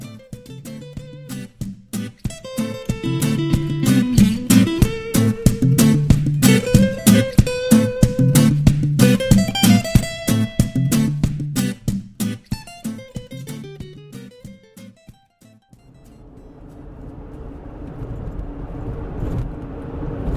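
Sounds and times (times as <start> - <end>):
bright rhythmic plucked notes: 0.0 - 16.4
car interior engine and road noise while driving: 16.0 - 20.3.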